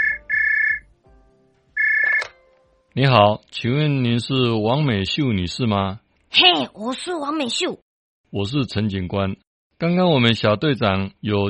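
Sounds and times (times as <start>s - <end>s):
telephone ringing at home with electronic ringtone: 0.0s - 0.8s, 1.8s - 2.4s
speech: 3.0s - 11.4s.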